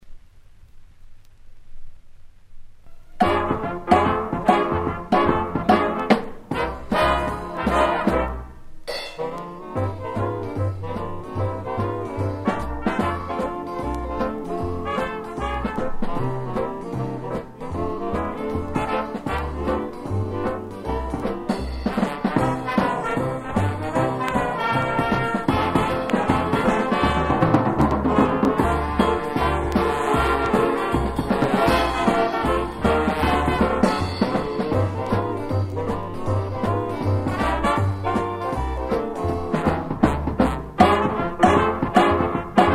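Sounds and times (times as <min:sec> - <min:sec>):
old blues piano roll: 0:03.1 - 0:08.6, 0:09.2 - 0:42.7.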